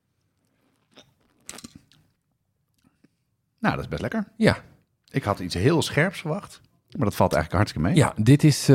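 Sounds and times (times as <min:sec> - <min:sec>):
person sipping strong liquor from a black hip flask: 0:00.3 - 0:02.1
speech: 0:03.6 - 0:08.7.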